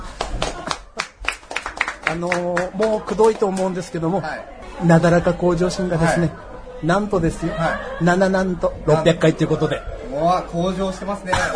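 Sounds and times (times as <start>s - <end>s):
small group clapping hands: 0.0s - 3.8s
speech: 2.1s - 11.5s
faint murmur: 4.3s - 11.5s.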